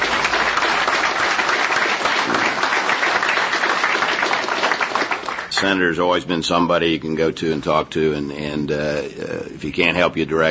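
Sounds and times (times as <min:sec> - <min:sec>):
audience applause: 0:00.0 - 0:05.8
speech: 0:05.6 - 0:10.4.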